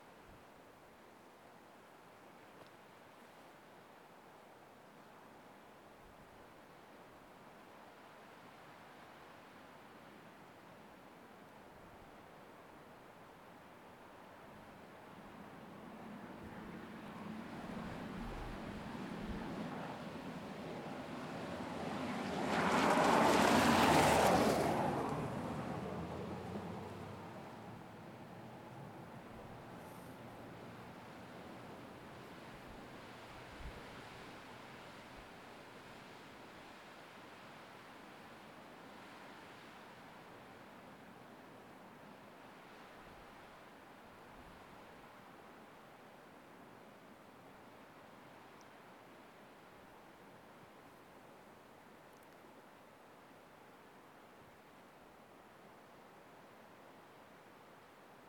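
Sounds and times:
constant light breeze: 0:00.0 - 0:58.2
car passing close: 0:16.3 - 0:33.6.

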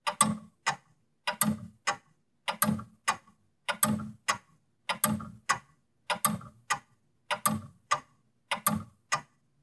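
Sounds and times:
old clock pendulum ticking: 0:00.0 - 0:09.3.

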